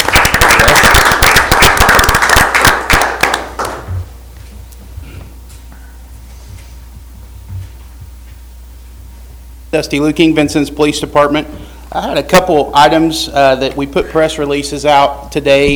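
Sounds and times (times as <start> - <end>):
city council meeting audience applause: 0.0 - 3.9
speech: 9.8 - 15.7.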